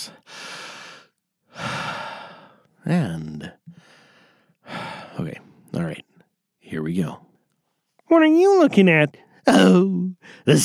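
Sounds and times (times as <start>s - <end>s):
deep breaths: 0.0s - 2.8s, 3.6s - 5.8s, 10.2s - 10.5s
speech: 2.9s - 3.8s, 5.2s - 5.4s, 6.8s - 7.2s, 8.1s - 10.6s.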